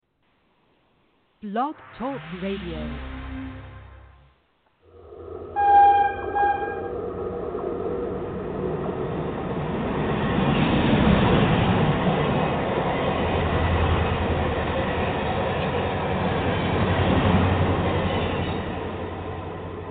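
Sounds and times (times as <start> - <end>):
speech: 1.4 - 3.2
train rumbling and clattering past: 1.7 - 19.8
train horn blast: 5.5 - 7.0.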